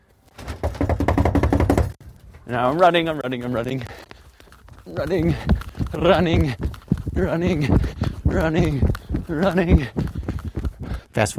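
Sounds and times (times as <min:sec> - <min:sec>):
person knocking on a front door: 0:00.5 - 0:02.0
speech: 0:02.5 - 0:04.0, 0:04.8 - 0:10.1, 0:11.2 - 0:11.3.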